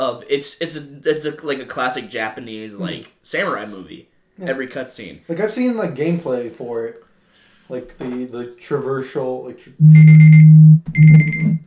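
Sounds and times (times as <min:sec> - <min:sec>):
speech: 0:00.0 - 0:07.0, 0:07.7 - 0:10.2, 0:10.8 - 0:11.6
electronic alarm buzzing: 0:09.8 - 0:11.6.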